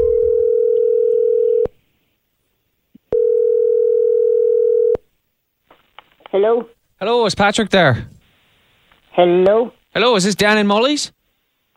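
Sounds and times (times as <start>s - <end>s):
telephone dial tone: 0.4s - 1.7s, 3.2s - 5.0s
speech: 6.3s - 8.2s, 9.2s - 11.2s.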